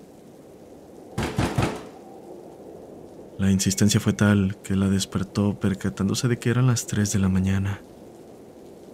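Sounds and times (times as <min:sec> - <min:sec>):
knocking on a door: 0:01.2 - 0:01.9
speech: 0:03.4 - 0:07.9.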